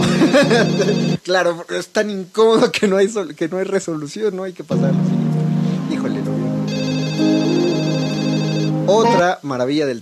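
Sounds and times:
laughter: 0:00.0 - 0:01.2
music: 0:00.0 - 0:01.2, 0:04.7 - 0:09.4
telephone ringing with electronic trill: 0:00.0 - 0:01.2, 0:06.7 - 0:09.2
speech: 0:00.4 - 0:05.3, 0:08.9 - 0:10.0.

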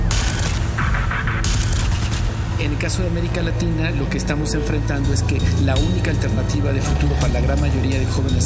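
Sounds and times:
machine-gun fire: 0:00.1 - 0:02.4
speech: 0:02.8 - 0:08.4.

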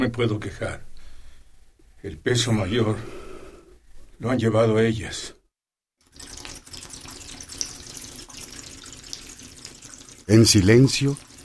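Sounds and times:
speech: 0:00.0 - 0:00.9, 0:02.0 - 0:03.2, 0:04.2 - 0:05.4, 0:10.3 - 0:11.3
water running from a tap into a bucket: 0:06.0 - 0:11.4.

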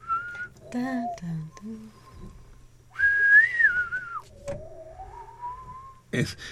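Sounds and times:
whistled alien spaceship melody from a film: 0:00.0 - 0:00.6, 0:02.9 - 0:04.2, 0:04.8 - 0:06.0
speech: 0:00.7 - 0:02.3, 0:06.1 - 0:06.5.

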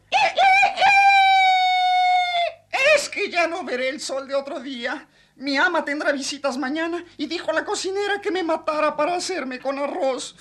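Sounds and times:
rooster crowing: 0:00.1 - 0:02.6
speech: 0:03.3 - 0:10.3.

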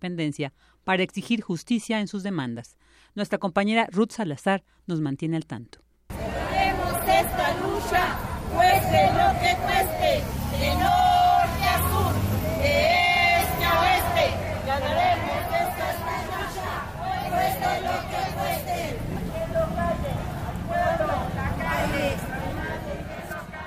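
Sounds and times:
speech: 0:00.0 - 0:05.8, 0:07.1 - 0:11.1
overlapping shouts of marchers: 0:06.1 - 0:23.6
protest march crowd of marchers chanting: 0:06.1 - 0:23.6.

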